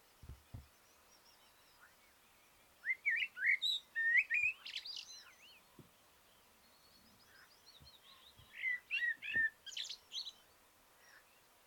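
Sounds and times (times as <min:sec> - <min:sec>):
faint low thumps: 0:00.2 - 0:00.7
common blackbird Turdus merula singing: 0:00.3 - 0:11.4.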